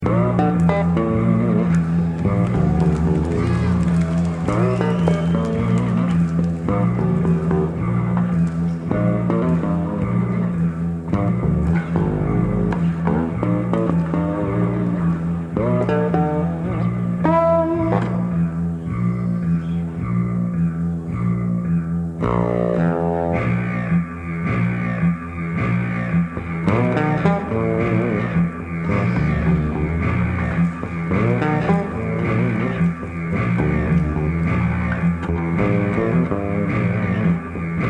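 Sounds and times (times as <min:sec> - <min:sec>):
bass improvisation: 0:00.0 - 0:37.8.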